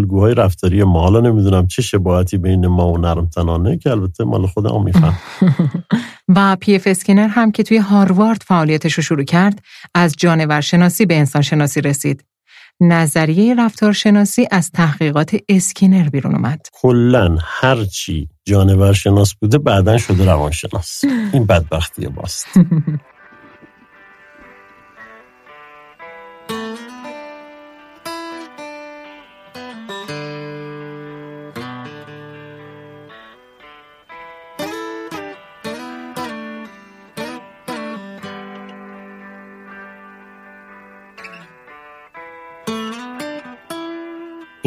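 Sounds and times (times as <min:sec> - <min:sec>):
speech: 0:00.0 - 0:23.1
laughter: 0:04.7 - 0:06.2, 0:19.7 - 0:23.9
rock music recording with guitar: 0:22.6 - 0:44.6.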